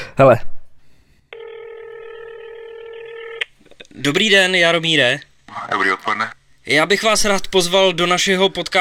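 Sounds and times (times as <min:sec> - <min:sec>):
speech: 0:00.2 - 0:00.5, 0:04.0 - 0:08.7
steady electronic telephone tone from a recorded phone call: 0:01.3 - 0:03.4.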